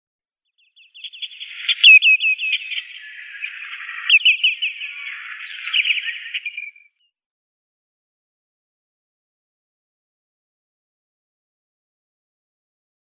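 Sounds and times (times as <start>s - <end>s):
Lesser Yellowlegs calls: 0.6s - 7.0s.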